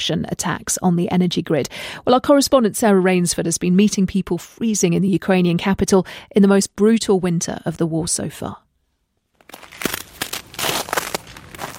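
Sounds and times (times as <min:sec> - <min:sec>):
speech: 0:00.0 - 0:08.6
footsteps crunching on packed icy snow in Kyiv Ukraine at minus 17 degrees: 0:09.4 - 0:11.7.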